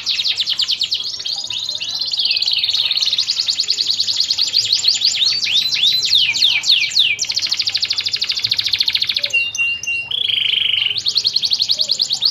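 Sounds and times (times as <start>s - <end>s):
champion canary song: 0.0s - 12.2s.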